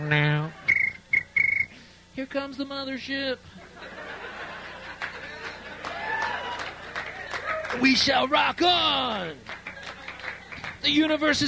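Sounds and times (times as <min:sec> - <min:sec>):
low steady hummed note: 0:00.0 - 0:00.6
speech: 0:00.0 - 0:00.6, 0:02.2 - 0:04.2, 0:07.8 - 0:09.5, 0:10.8 - 0:11.4
crickets chirping: 0:00.0 - 0:01.9
laughter: 0:03.6 - 0:07.7.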